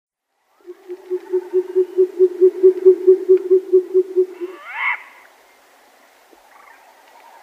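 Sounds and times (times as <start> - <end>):
male short-eared owl hooting in flight display: 0.6 - 5.1.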